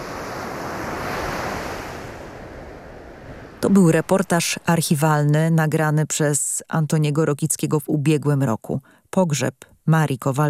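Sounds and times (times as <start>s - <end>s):
surf washing onto a shore: 0.0s - 4.7s
wind noise: 0.0s - 5.0s
speech: 3.6s - 10.4s.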